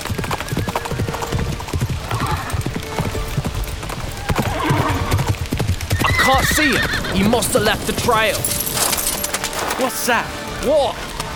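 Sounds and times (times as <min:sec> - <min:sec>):
horse hooves pounding in a fast gallop: 0:00.0 - 0:11.3
horse whinny: 0:06.0 - 0:08.7
speech: 0:06.3 - 0:08.6, 0:09.8 - 0:11.1.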